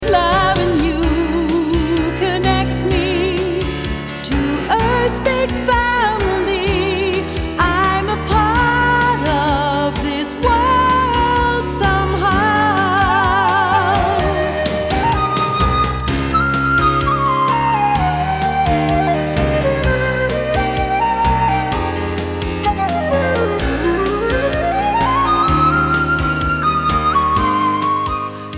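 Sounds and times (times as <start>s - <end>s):
pianist playing piano: 0.0s - 28.5s.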